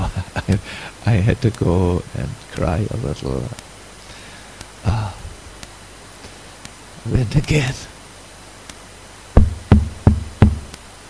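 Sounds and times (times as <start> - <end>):
speech: 0.5 - 3.7, 7.1 - 7.9
firm hollow knocks on a door: 9.4 - 10.7.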